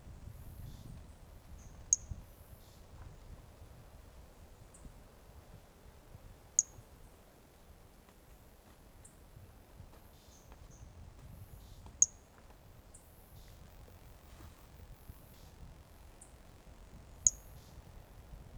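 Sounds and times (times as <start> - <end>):
low steady background hiss: 0.0 - 18.5
Brachycephalus mirissimus toadlet calling: 17.2 - 17.7.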